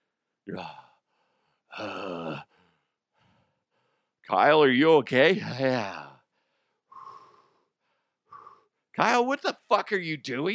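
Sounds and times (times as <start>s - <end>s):
speech: 0.5s - 0.8s, 1.8s - 2.5s, 4.3s - 6.0s, 9.0s - 10.5s
person imitating heavy breathing during a meeting: 1.8s - 2.5s.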